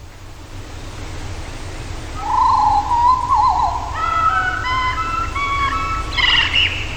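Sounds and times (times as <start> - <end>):
steady low outdoor rumble: 0.0 - 6.9
blackbird singing a whistled melody resembling a children's song: 2.2 - 6.9.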